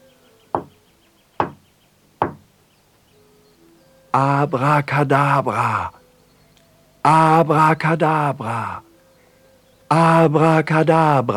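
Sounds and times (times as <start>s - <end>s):
firm knocks on a door: 0.6s - 0.8s, 1.4s - 1.6s, 2.2s - 2.5s
speech: 4.1s - 6.0s, 7.0s - 8.9s, 9.9s - 11.3s.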